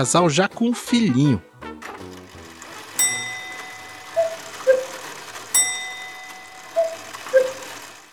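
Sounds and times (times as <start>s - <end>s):
speech: 0.0s - 1.5s
wall clock striking three o'clock: 1.8s - 8.1s.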